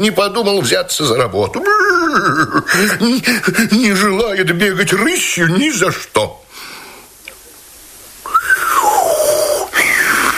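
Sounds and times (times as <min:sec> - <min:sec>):
speech: 0:00.0 - 0:06.7
laughter: 0:01.6 - 0:03.6
clear gliding whistle: 0:08.3 - 0:10.3.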